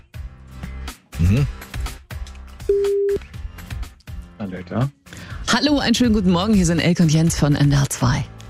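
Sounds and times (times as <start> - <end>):
speech: 1.3 - 1.6, 4.5 - 5.0, 5.5 - 8.3
telephone ringback tone on a mobile phone call: 2.7 - 3.2.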